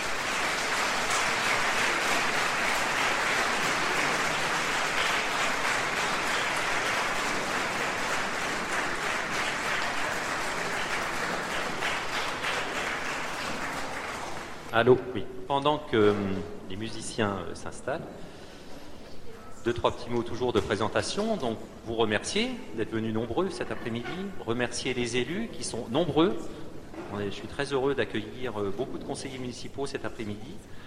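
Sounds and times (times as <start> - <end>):
audience applause: 0.0 - 14.7
speech: 14.8 - 18.3, 19.6 - 30.8.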